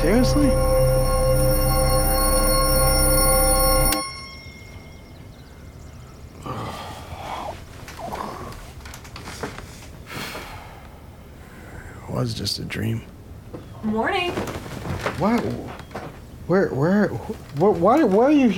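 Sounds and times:
speech: 0:00.0 - 0:00.7, 0:12.2 - 0:15.8, 0:16.5 - 0:18.5
church bells ringing: 0:00.0 - 0:06.1
soft vocal sounds: 0:06.3 - 0:08.8
quiet breathing: 0:06.4 - 0:12.2.

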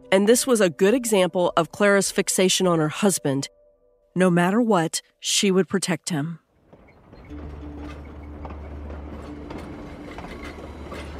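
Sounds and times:
speech: 0:00.1 - 0:03.6, 0:04.2 - 0:06.4
overnight train rolling along the tracks: 0:06.6 - 0:11.1
train clacks and rattles: 0:06.6 - 0:11.1.

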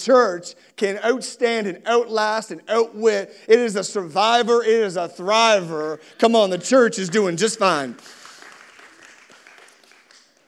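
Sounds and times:
speech: 0:00.0 - 0:08.2
audience clapping: 0:05.6 - 0:10.4.

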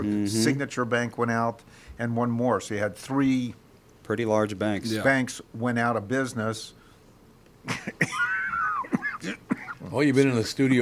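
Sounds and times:
speech: 0:00.0 - 0:06.8, 0:07.6 - 0:08.2, 0:09.2 - 0:10.8
harsh coughs: 0:07.7 - 0:09.9.

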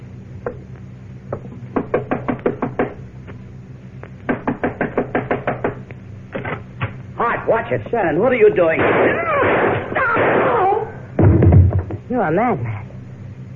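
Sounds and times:
low hum: 0:00.0 - 0:13.5
rapid firm knocking on a wooden door: 0:01.3 - 0:03.0, 0:04.3 - 0:05.8
speech: 0:07.7 - 0:09.4, 0:12.1 - 0:12.7.

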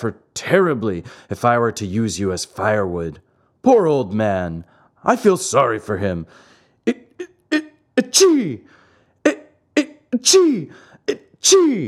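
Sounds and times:
speech: 0:00.0 - 0:07.3, 0:08.0 - 0:09.4, 0:10.1 - 0:11.8
narrator acting out loud sneezes: 0:06.9 - 0:08.7, 0:09.3 - 0:11.8.

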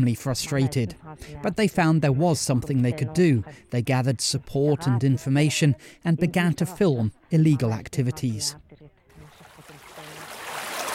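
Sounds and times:
speech: 0:00.0 - 0:08.7
river water flowing: 0:09.1 - 0:10.9.

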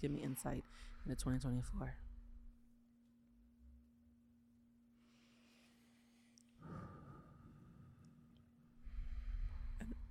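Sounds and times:
speech: 0:00.0 - 0:02.1
faint steady hum: 0:00.0 - 0:10.0
person breathing in through nose and out through mouth: 0:00.2 - 0:01.3, 0:05.0 - 0:10.0.

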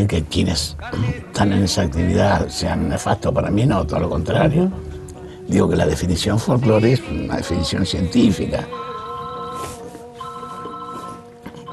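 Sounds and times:
speech: 0:00.0 - 0:04.9, 0:05.5 - 0:08.9
telephone ringing with an electronic warble: 0:08.2 - 0:11.7.

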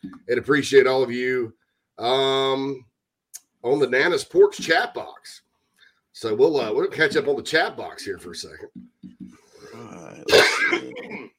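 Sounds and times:
speech: 0:00.3 - 0:02.9, 0:03.6 - 0:05.4, 0:06.2 - 0:08.9, 0:09.8 - 0:11.3
breathy throat sounds and rasp: 0:09.2 - 0:11.3
single harsh cough: 0:09.6 - 0:11.3.

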